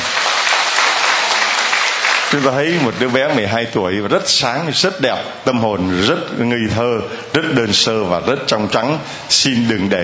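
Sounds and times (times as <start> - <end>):
audience applauding: 0.0 - 3.5
speech: 2.3 - 10.0.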